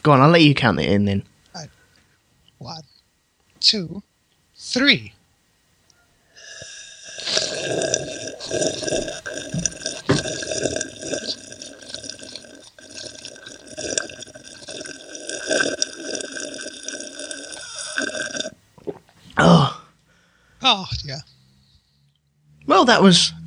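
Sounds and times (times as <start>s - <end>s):
speech: 0.0s - 1.8s, 2.6s - 2.9s, 3.6s - 5.2s, 7.2s - 9.8s, 20.7s - 21.3s, 22.8s - 23.4s
slurping water from a cup: 6.4s - 19.4s.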